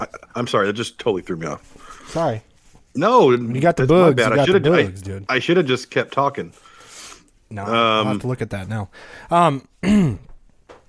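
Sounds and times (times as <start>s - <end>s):
speech: 0.0s - 6.7s, 7.5s - 10.3s
person burping: 9.8s - 10.4s.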